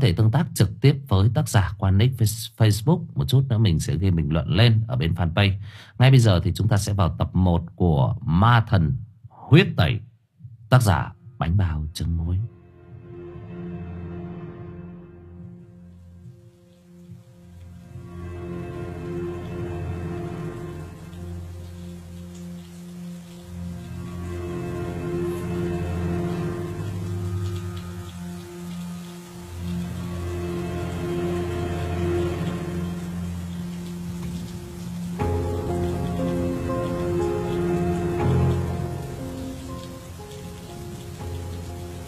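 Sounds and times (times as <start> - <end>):
speech: 0.0 - 10.1, 10.7 - 12.6
heavy rain pouring onto an asphalt road: 16.4 - 42.0.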